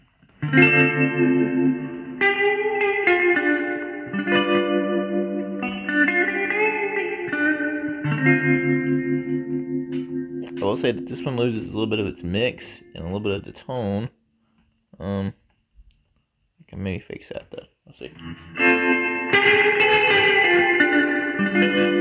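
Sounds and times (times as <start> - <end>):
electric instrument playing sustained chords through a spring reverb unit: 0.4 - 13.0, 18.2 - 21.9
speech: 0.5 - 1.9, 10.8 - 14.2, 15.0 - 15.4, 16.7 - 20.3, 21.6 - 21.9.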